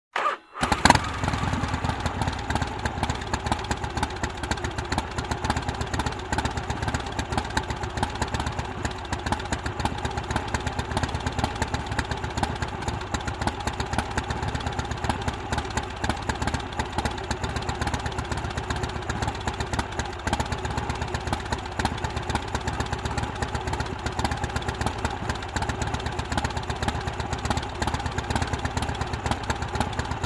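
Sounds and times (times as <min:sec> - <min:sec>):
motorcycle engine starting, idling and turning off: 0:00.1 - 0:30.2.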